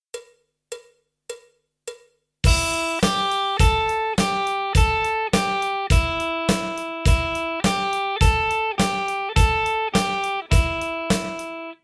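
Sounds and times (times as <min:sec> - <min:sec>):
electric guitar blues-rock lick: 0:02.5 - 0:11.8.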